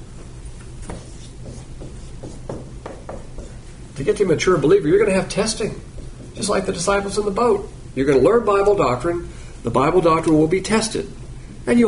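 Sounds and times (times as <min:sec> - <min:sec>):
drawing on a board: 0:00.8 - 0:03.7
speech: 0:04.0 - 0:11.8.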